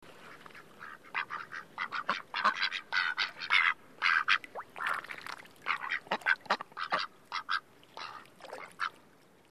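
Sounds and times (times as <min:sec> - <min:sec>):
low background hiss: 0:00.0 - 0:09.4
duck quacking with harsh nasal quacks: 0:00.8 - 0:05.0, 0:05.7 - 0:09.0.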